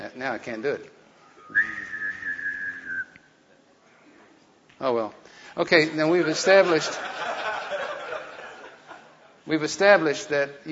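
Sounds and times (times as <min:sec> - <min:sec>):
speech: 0:00.1 - 0:01.8, 0:04.8 - 0:07.3, 0:09.5 - 0:10.6
person whistling a sustained wavering note: 0:01.4 - 0:03.3
laughter: 0:05.9 - 0:09.4.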